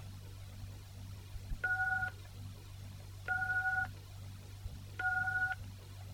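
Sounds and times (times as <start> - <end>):
telephone keypad dual-tone beeps entering a voicemail mailbox number: 1.6 - 2.1, 3.3 - 3.9, 5.0 - 5.6.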